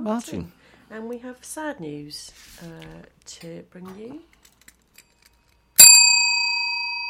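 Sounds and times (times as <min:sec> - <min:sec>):
speech: 0:00.0 - 0:04.4
single bright bell strike ringing: 0:05.8 - 0:07.0.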